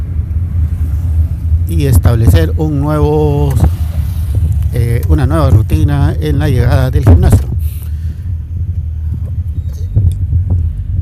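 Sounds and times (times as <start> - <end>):
car engine and road noise rolling into a shopping mall parking lot: 0.0 - 10.9
speech: 1.7 - 3.8, 4.7 - 7.5.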